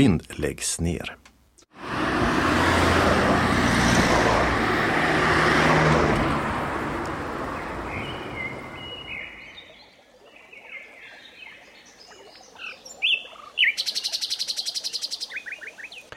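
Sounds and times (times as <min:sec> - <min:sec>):
speech: 0:00.0 - 0:01.2
dense traffic noise on a square in Malmö: 0:01.7 - 0:09.5
buses humming on a square in Malmö: 0:01.8 - 0:09.3
recorded birdsong chirping and trilling: 0:07.0 - 0:16.1.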